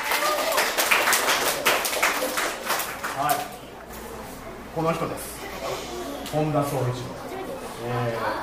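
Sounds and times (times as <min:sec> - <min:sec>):
group of children clapping together: 0:00.0 - 0:03.6
speech: 0:04.8 - 0:07.2, 0:07.8 - 0:08.4.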